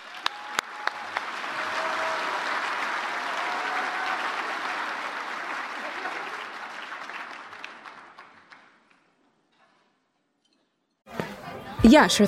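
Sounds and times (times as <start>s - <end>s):
audience applause: 0.0s - 9.0s
scattered claps: 0.0s - 9.2s
speech: 11.8s - 12.2s.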